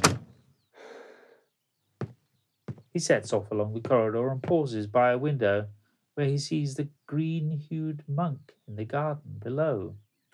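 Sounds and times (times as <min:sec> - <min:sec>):
door closing with heavy thunk: 0:00.0 - 0:00.4
soft breathy sigh: 0:00.7 - 0:01.4
speech: 0:03.0 - 0:10.0.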